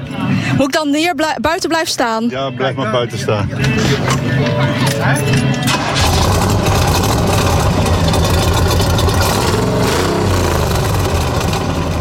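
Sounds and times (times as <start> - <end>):
speech: 0.6 - 6.0
V8 car engine idling in Hanswerd: 5.7 - 11.9.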